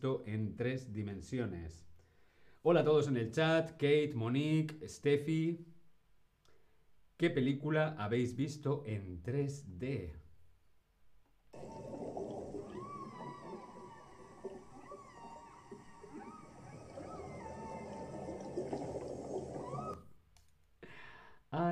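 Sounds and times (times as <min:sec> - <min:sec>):
speech: 0:00.0 - 0:01.9, 0:02.6 - 0:05.7, 0:07.2 - 0:10.2
underwater whale calls: 0:11.6 - 0:20.1.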